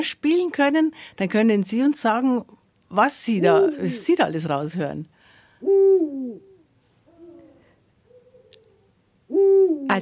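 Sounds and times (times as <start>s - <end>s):
speech: 0.0s - 6.5s, 9.4s - 10.0s
male Eurasian eagle owl giving a deep two-syllable hooting call: 5.6s - 10.0s.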